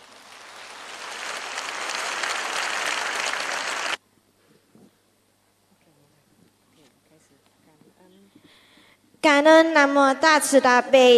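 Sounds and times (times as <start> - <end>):
audience applause welcoming a speaker: 0.0 - 4.0
speech: 9.4 - 11.1.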